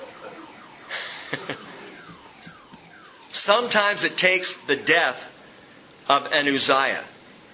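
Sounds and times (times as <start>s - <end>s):
car alarm wailing with sweeping tones and electronic bursts: 0.0s - 5.5s
speech: 1.4s - 1.8s, 3.5s - 5.3s, 6.1s - 7.1s.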